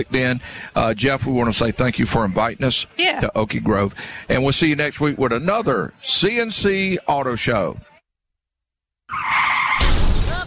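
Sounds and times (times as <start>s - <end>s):
speech: 0.0s - 7.9s
car tires screeching in a skid: 9.1s - 10.0s
car crash: 9.3s - 10.4s
glass shattering: 9.8s - 10.4s.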